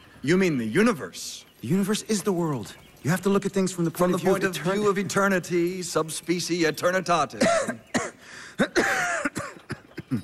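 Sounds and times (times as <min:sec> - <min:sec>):
speech: 0:00.2 - 0:09.1
person coughing harshly: 0:07.4 - 0:10.2.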